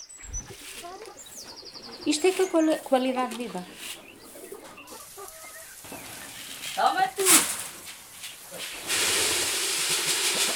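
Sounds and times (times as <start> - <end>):
steady outdoor hiss: 0.0 - 10.5
several chickens clucking: 0.2 - 8.9
speech: 2.0 - 4.0.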